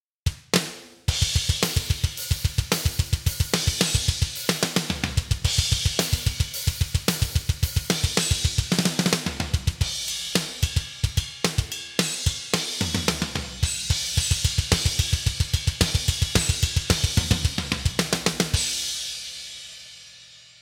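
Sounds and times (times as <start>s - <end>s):
layered bass drums: 0.3s - 19.5s.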